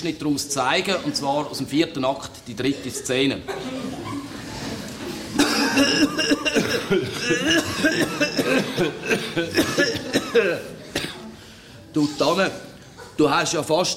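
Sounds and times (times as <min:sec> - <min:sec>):
speech: 0:00.0 - 0:04.0, 0:05.8 - 0:10.8, 0:11.9 - 0:13.9
laughter: 0:02.8 - 0:10.9
throaty rasping coughing: 0:05.3 - 0:11.4.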